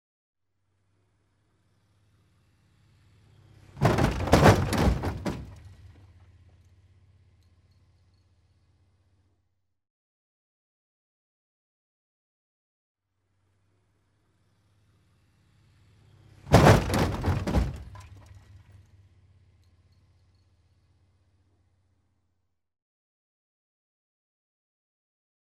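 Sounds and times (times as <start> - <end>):
car collision: 3.7 - 6.2, 16.4 - 18.8.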